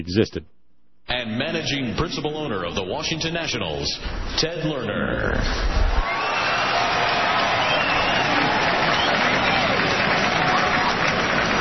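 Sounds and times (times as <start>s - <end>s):
speech: 0.0s - 6.1s
large baseball stadium crowd applauding and cheering in Washington: 6.0s - 11.5s.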